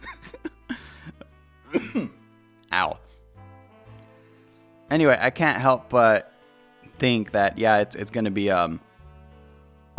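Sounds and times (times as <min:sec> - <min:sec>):
person coughing from smoke: 0:01.7 - 0:02.2
speech: 0:02.0 - 0:02.2, 0:05.0 - 0:06.3, 0:07.0 - 0:08.9.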